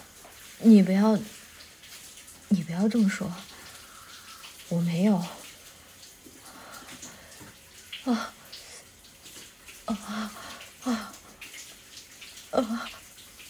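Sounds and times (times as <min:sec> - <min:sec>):
bath water splashing and sloshing in a tub: 0:00.0 - 0:13.4
speech: 0:00.6 - 0:01.4, 0:02.6 - 0:03.5, 0:04.7 - 0:05.4, 0:08.0 - 0:08.4, 0:09.9 - 0:11.1, 0:12.5 - 0:13.0.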